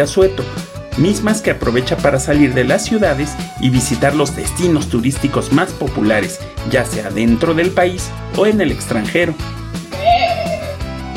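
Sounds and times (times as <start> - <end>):
speech: 0.0 - 9.6
sheep bleating: 9.9 - 10.8.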